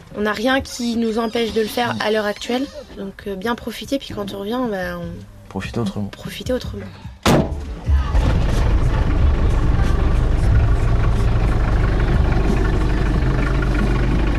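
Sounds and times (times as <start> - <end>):
speech: 0.1 - 7.1
camper van engine idling: 7.4 - 14.3.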